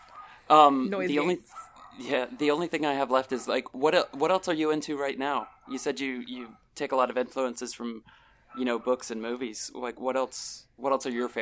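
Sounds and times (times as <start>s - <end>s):
dogs barking: 0.0s - 0.5s, 1.2s - 4.3s, 5.2s - 6.7s, 8.5s - 9.1s
speech: 0.5s - 11.3s.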